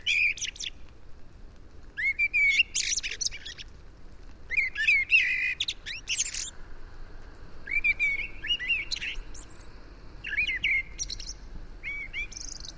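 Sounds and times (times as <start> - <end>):
Eurasian blackbird Turdus merula whistled notes and scratchy twittering: 0.0 - 0.8, 2.0 - 3.6, 4.5 - 6.5, 7.7 - 12.7.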